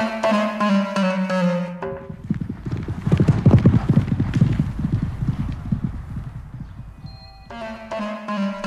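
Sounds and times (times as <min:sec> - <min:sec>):
tuneful musical phrase: 0:00.0 - 0:02.2, 0:07.1 - 0:08.6
horse hooves clip-clopping: 0:01.8 - 0:07.5.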